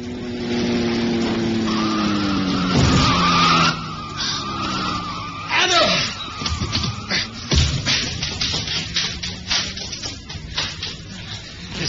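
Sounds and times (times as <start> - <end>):
car tires screeching in a long skid: 0.2 - 11.8.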